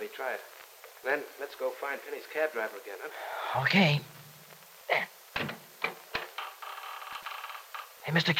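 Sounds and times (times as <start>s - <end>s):
speech: 0.2s - 4.2s, 8.1s - 8.3s
door latch rattling and clicking: 5.4s - 7.9s.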